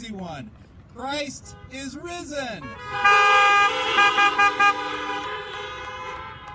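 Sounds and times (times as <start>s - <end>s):
speech: 0.2s - 5.4s
car horns honking at a drive-in worship service: 1.3s - 6.5s.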